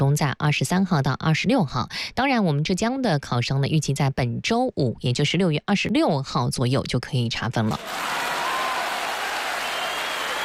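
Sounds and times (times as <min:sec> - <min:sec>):
speech: 0:00.1 - 0:08.3
dense steady crowd applause: 0:07.8 - 0:10.4.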